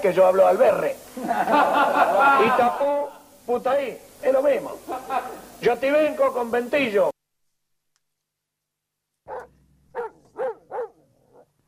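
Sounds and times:
speech: 0.0s - 7.1s
laughter: 1.1s - 3.2s, 4.6s - 5.6s
dogs barking: 9.3s - 11.6s.

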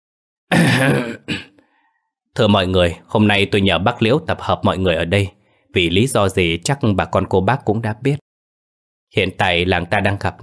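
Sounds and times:
speech: 0.5s - 1.5s, 2.4s - 8.2s, 9.1s - 10.4s
man clearing his throat: 0.5s - 1.6s.

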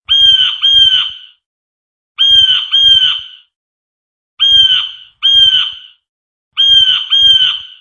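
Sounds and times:
harsh nasal bird calls in pairs: 0.1s - 1.4s, 2.2s - 3.6s, 4.4s - 7.7s.

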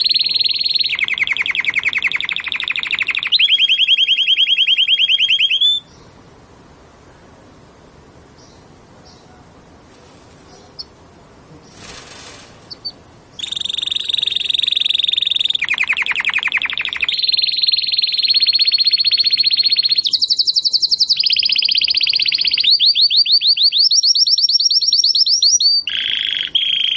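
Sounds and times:
Belgian canary singing in the campainha song style: 0.0s - 6.4s, 8.3s - 26.9s.

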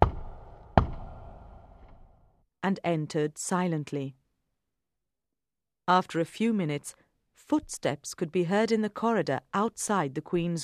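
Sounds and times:
knocking on a wooden door: 0.0s - 1.4s
speech: 2.7s - 4.2s, 5.9s - 10.6s.

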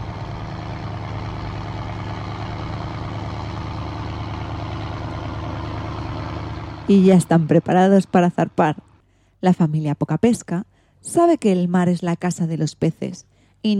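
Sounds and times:
small blue and white boat engine droning: 0.0s - 9.0s
speech: 6.9s - 13.7s.

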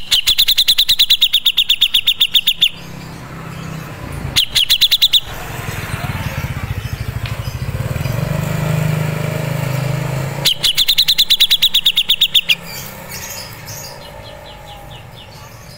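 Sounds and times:
grey-cheeked bulbul chipping calls: 0.0s - 15.7s.

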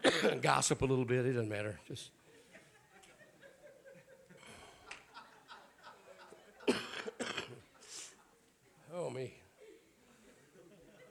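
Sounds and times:
church congregation coughing during a sermon: 0.0s - 0.4s, 6.6s - 8.1s
speech: 0.2s - 2.2s, 9.2s - 9.4s
church congregation chuckling: 2.3s - 8.5s, 9.6s - 11.1s.

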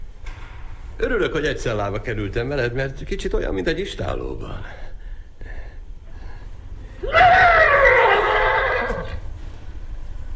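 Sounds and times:
speech: 1.0s - 4.8s
horse neighing: 7.0s - 9.2s.

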